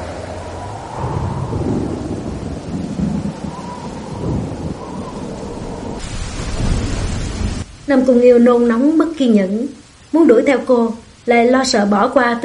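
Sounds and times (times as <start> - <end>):
rolling thunder: 0.0 - 9.2
heavy rain: 0.0 - 12.4
speech: 7.9 - 12.4.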